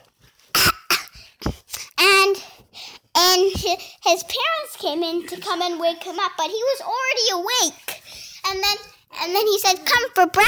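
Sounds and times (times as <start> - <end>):
person coughing: 0.6 - 1.3
speech: 3.6 - 10.4.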